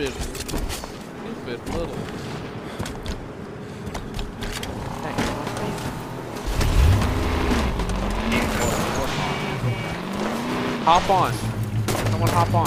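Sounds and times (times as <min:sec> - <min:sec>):
speech: 0:00.0 - 0:00.8, 0:01.5 - 0:02.4, 0:10.9 - 0:11.5, 0:12.1 - 0:12.6
video game noise: 0:00.0 - 0:12.6
vehicle engine droning in a video game: 0:04.5 - 0:12.6.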